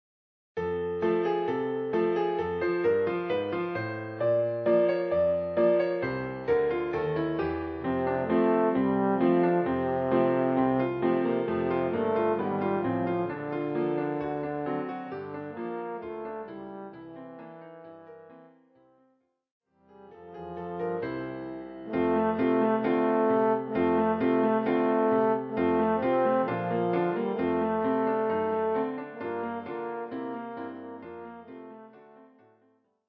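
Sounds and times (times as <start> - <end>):
piano: 0.6 - 19.2, 19.8 - 32.8
trombone: 7.9 - 14.6, 21.8 - 32.3.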